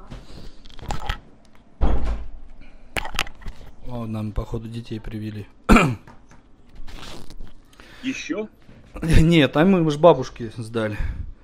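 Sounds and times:
door being closed with a solid low thump: 1.8 - 2.3
speech: 3.9 - 6.1, 8.0 - 11.2.

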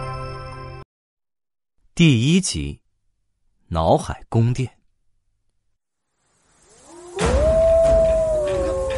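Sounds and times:
speech: 2.0 - 2.8, 3.7 - 4.8
wolf pack howling: 6.8 - 8.9.

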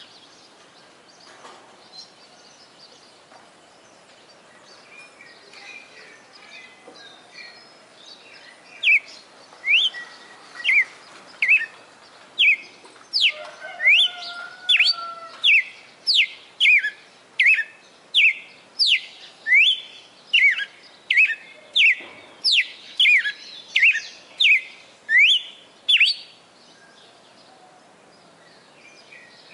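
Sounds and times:
female red-cowled cardinal singing in Fortaleza-CE: 8.8 - 11.7, 12.4 - 12.6, 13.2 - 26.3.

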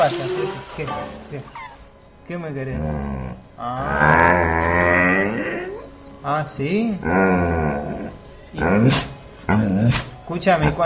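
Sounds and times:
speech: 0.0 - 1.7, 2.3 - 10.8
dog growling and snarling: 2.6 - 6.1, 6.8 - 10.8.

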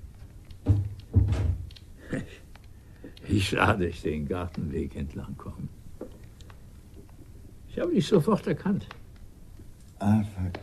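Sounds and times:
door closing thuds: 0.6 - 1.7
speech: 3.3 - 5.8, 7.8 - 9.0, 10.0 - 10.6.

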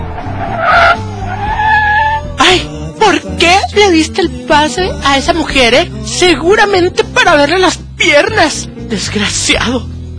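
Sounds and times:
low car engine rumble: 0.0 - 4.0
car braking hard with tires skidding: 0.1 - 2.4
speech: 3.4 - 10.0.

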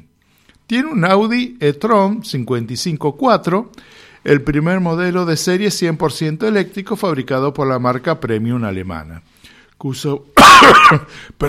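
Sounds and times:
speech: 0.7 - 11.4
harsh cough or throat-clear: 10.4 - 11.4.

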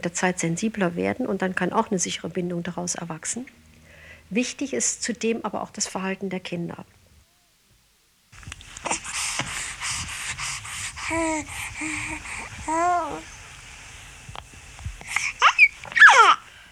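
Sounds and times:
speech: 0.0 - 3.6, 4.3 - 7.0, 11.1 - 13.4
steady soft hiss: 0.0 - 16.6
baby cooing and babbling: 11.0 - 13.4, 15.2 - 16.5.

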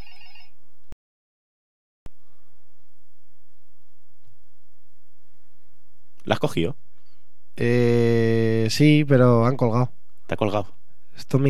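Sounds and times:
telephone ringing with an incoming call: 0.0 - 0.6
hiss: 2.1 - 11.4
speech: 6.3 - 6.9, 7.6 - 11.4.

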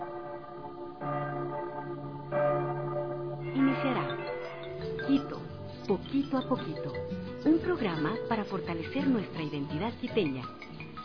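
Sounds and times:
church bells ringing in a city: 0.0 - 10.0
speech: 5.1 - 10.6.

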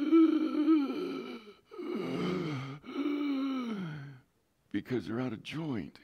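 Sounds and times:
person imitating the strained gasping breath of someone unable to breathe: 0.0 - 4.2
speech: 4.7 - 6.0.

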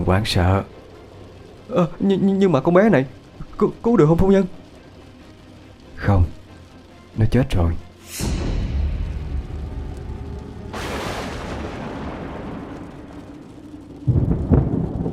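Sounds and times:
speech: 0.0 - 0.8, 1.7 - 4.6, 6.0 - 6.4, 7.2 - 8.4
heavy boom: 8.1 - 13.5
thunderclap at night: 8.2 - 15.1.

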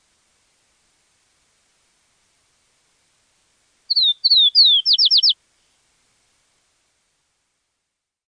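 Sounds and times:
bird calling with descending whistled slurs and clipped high notes: 3.9 - 5.4.

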